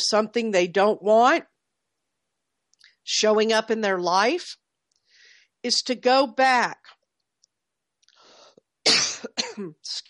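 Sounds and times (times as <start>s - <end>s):
speech: 0.0s - 1.5s, 3.1s - 4.6s, 5.6s - 6.9s, 9.2s - 10.0s
person clearing throat, rough and gravelly: 8.9s - 9.8s
person coughing: 8.9s - 9.8s.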